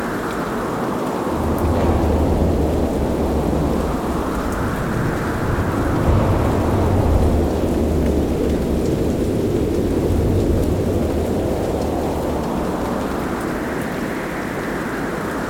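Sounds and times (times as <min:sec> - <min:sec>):
storm ambience at a dojo: 0:00.0 - 0:15.4.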